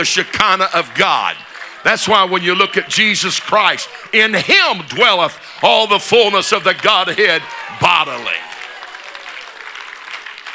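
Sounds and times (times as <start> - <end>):
speech: 0.0 - 8.5
crowd applauding: 0.0 - 10.5.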